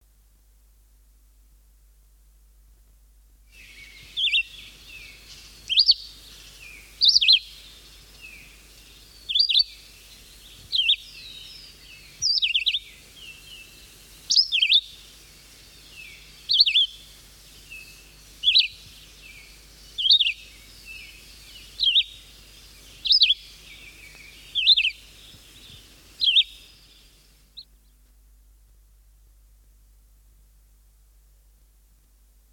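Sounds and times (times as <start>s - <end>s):
songbirds singing: 3.5s - 28.0s.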